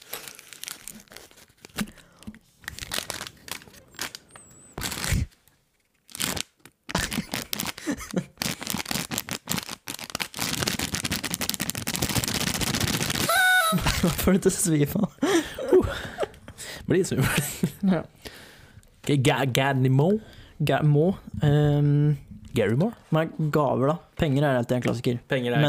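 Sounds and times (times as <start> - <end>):
paper rattling and crinkling: 0.0 - 2.0, 2.6 - 4.2, 6.1 - 13.2
paper tearing: 2.6 - 13.3
laughter: 13.3 - 18.0
speech: 14.0 - 15.2, 16.9 - 18.2, 19.1 - 25.6.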